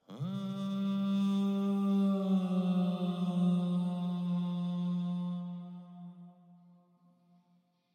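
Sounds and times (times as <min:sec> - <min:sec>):
backing vocals: 0:00.0 - 0:06.0.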